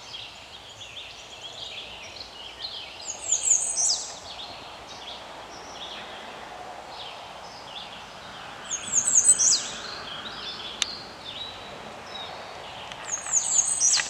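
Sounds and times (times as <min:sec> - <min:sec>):
steady background noise: 0:00.0 - 0:14.0
Alpine willow tit calls in Vulpera, Engadin, Graubünden, Switzerland: 0:08.7 - 0:14.0.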